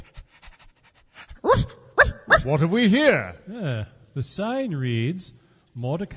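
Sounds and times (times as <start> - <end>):
dog panting at a boat-hire jetty: 0.0 - 2.5
speech: 2.4 - 6.1.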